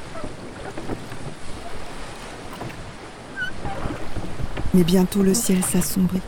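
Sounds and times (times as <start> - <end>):
calm sea water lapping and splashing around a small sailing boat: 0.0 - 4.8
light wind: 0.0 - 6.2
speech: 4.8 - 6.2.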